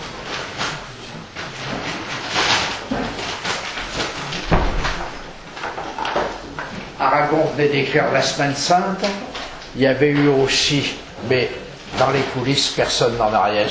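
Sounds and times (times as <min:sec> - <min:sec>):
rustling and shuffling room noise: 0:00.0 - 0:13.6
door pulled shut with a dull thud: 0:01.6 - 0:07.0
speech: 0:07.0 - 0:13.6.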